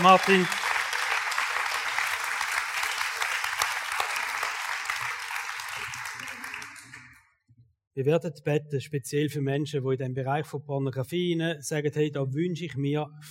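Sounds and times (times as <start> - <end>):
speech: 0.0 - 0.6, 8.0 - 13.2
crowd applauding with many hands clapping: 0.0 - 7.2.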